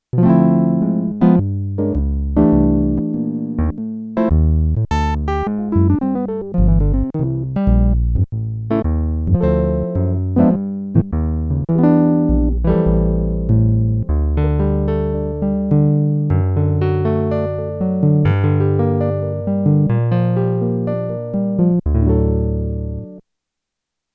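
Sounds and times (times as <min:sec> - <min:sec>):
Korg DW-8000 synthesizer jazz guitar sound: 0:00.1 - 0:23.2.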